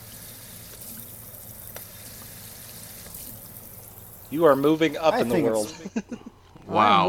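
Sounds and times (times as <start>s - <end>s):
spray gun spraying water at high pressure in a sink: 0.0s - 4.9s
speech: 4.3s - 7.0s.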